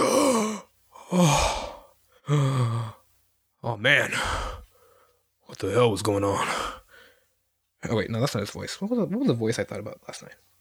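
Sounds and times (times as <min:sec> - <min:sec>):
man taking long deep sighing breaths: 0:00.0 - 0:03.0, 0:04.1 - 0:05.3, 0:06.4 - 0:07.4
speech: 0:01.1 - 0:01.6, 0:02.3 - 0:02.5, 0:03.6 - 0:04.6, 0:05.5 - 0:06.8, 0:07.8 - 0:10.5.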